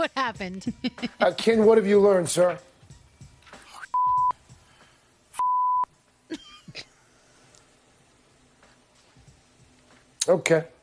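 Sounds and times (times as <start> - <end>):
speech: 0.0 - 2.7, 10.3 - 10.7
faint noise: 0.0 - 10.8
phone line disconnect beeps: 3.9 - 4.4, 5.4 - 5.9.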